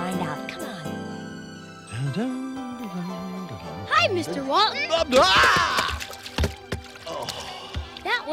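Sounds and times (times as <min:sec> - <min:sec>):
speech: 0:02.2 - 0:02.4, 0:04.0 - 0:05.7
water sloshing in bucket: 0:04.4 - 0:08.3
something jumping and landing in a water bucket splash: 0:05.0 - 0:08.0.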